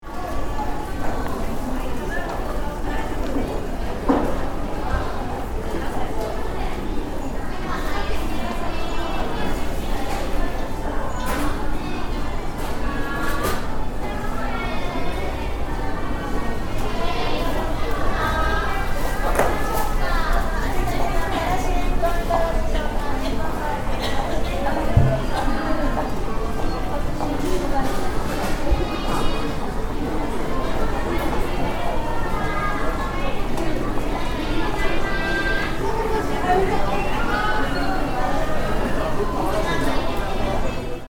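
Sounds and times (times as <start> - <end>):
shopping crowd ambience in an airport: 0.0 - 41.0.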